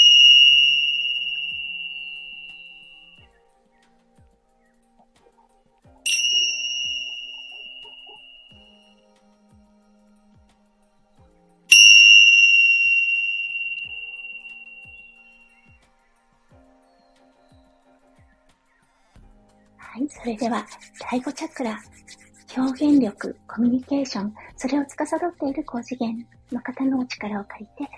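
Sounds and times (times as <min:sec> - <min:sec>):
tingsha bells ringing: 0:00.0 - 0:03.3, 0:06.0 - 0:10.3, 0:11.7 - 0:15.8
speech: 0:20.0 - 0:27.9.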